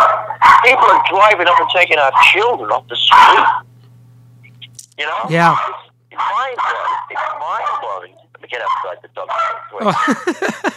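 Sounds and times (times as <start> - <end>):
dog barking in high-pitched bursts: 0.0 - 3.6, 5.1 - 8.0, 8.6 - 10.2
faint steady hum: 0.0 - 10.7
speech: 0.6 - 3.7, 5.0 - 10.7
laughter: 9.8 - 10.7.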